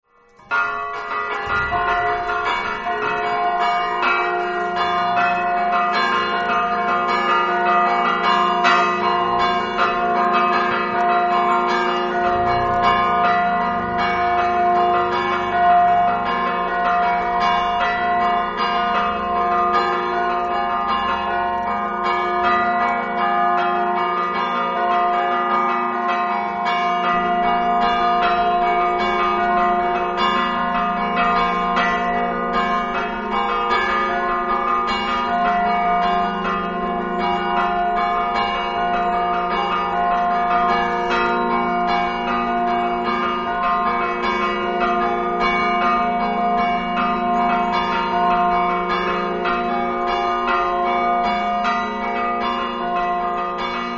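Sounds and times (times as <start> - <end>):
bells ringing in Dolegna: 0.1 - 53.9.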